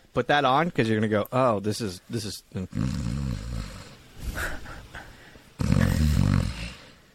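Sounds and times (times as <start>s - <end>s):
speech: 0.2s - 3.1s
person imitating snoring: 2.6s - 4.0s, 5.6s - 7.0s
breathy snort: 2.7s - 7.0s.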